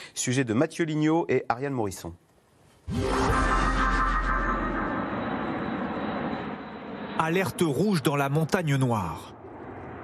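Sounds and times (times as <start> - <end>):
speech: 0.2 - 2.3, 7.2 - 9.4
airplanes roaring overhead during a parachute drop: 3.0 - 10.0.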